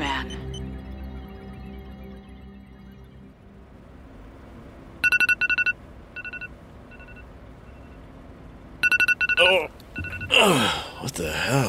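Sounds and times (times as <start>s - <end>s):
low hum: 0.0s - 11.6s
phone alarm with bright electronic tones: 5.0s - 8.0s, 8.8s - 10.4s
speech: 9.5s - 11.6s.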